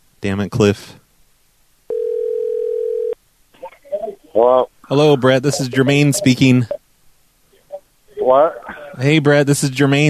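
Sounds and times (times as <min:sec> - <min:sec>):
speech: 0:00.2 - 0:01.0, 0:04.4 - 0:06.8, 0:08.3 - 0:10.0
telephone dial tone after call hung up: 0:01.9 - 0:03.2.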